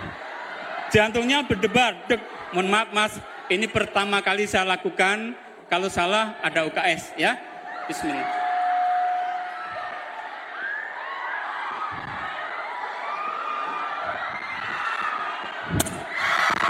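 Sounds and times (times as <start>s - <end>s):
crowd cheering and shouting: 0.0s - 5.2s, 5.8s - 16.6s
speech: 0.9s - 8.4s.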